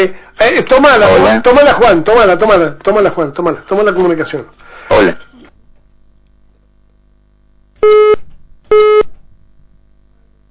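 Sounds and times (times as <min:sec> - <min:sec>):
speech: 0:00.0 - 0:05.3
short electronic beeps from a telephone being dialed: 0:07.8 - 0:09.1.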